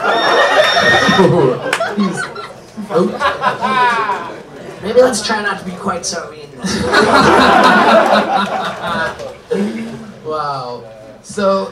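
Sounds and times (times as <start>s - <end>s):
people talking and chuckling: 0.0s - 5.2s, 6.5s - 10.4s
horse whinny sound effect: 0.6s - 1.4s
speech: 1.2s - 11.7s.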